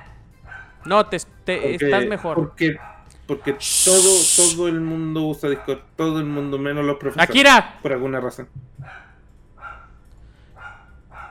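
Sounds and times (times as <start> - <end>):
dogs barking: 0.4 - 0.9, 2.8 - 3.1, 8.8 - 10.0, 10.6 - 11.2
speech: 0.8 - 9.0.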